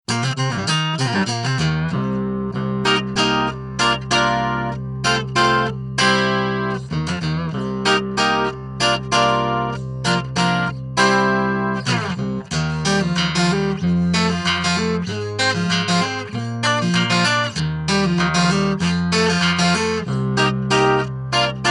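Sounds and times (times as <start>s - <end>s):
stereo clean electric guitar with micro crush effect: 0.1s - 21.6s.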